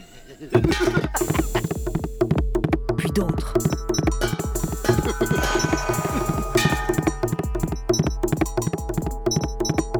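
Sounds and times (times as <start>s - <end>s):
speech: 0.4s - 1.3s
bomba hand drum played with strikes and slaps: 0.6s - 9.9s.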